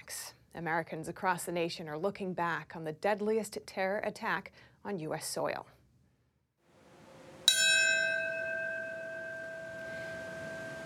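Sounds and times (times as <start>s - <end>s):
speech: 0.6s - 5.8s
faint hum: 6.7s - 10.8s
solemn memorial bell tolling: 7.4s - 10.8s.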